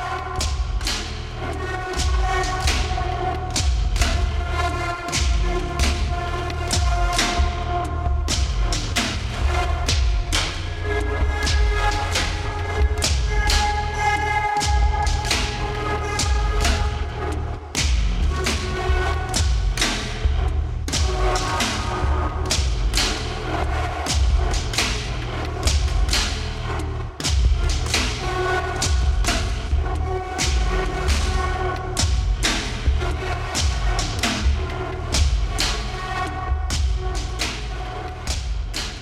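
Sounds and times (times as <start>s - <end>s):
experimental electronic music in five-four time: 0.0s - 39.0s.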